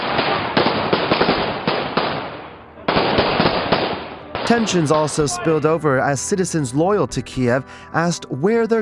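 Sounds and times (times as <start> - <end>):
gunfire in rapid irregular sharp shots: 0.0 - 5.1
speech: 4.5 - 8.8.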